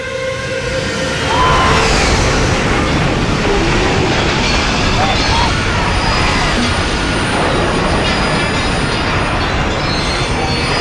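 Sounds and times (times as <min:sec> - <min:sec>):
rumble of a passenger train drawing closer: 0:00.2 - 0:10.8
passenger train horn blaring in a long steady chord: 0:00.6 - 0:08.6.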